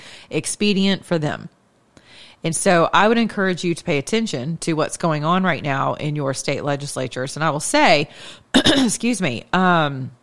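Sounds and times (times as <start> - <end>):
speech: 0.3 - 1.6, 2.4 - 10.2
person clearing throat: 8.6 - 9.0.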